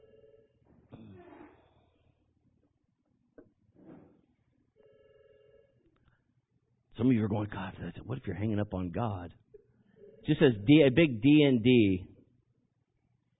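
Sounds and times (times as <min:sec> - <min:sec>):
telephone ringing in electronic trills: 0:00.0 - 0:00.6, 0:04.8 - 0:05.8
speech: 0:07.0 - 0:09.4, 0:10.3 - 0:12.1.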